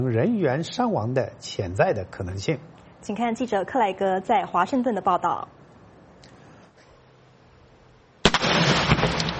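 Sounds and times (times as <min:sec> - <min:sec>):
speech: 0:00.0 - 0:05.6
firework exploding in a safety demonstration: 0:08.2 - 0:09.3.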